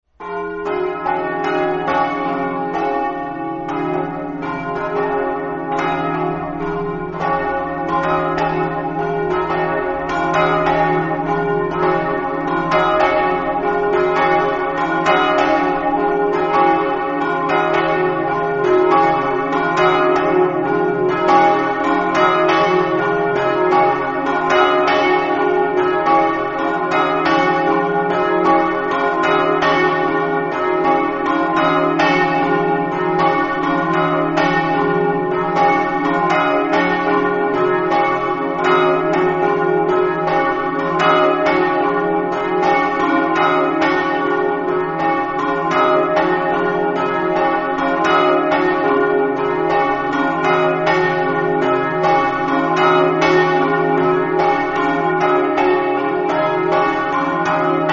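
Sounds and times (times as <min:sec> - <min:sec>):
church bells ringing in Mossa: 0:00.1 - 0:57.9.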